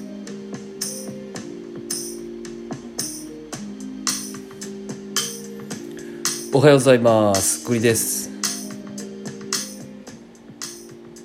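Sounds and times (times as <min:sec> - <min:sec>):
soft electronic background track made in GarageBand with synth chords and percussive beat: 0:00.0 - 0:11.2
speech: 0:06.5 - 0:08.2.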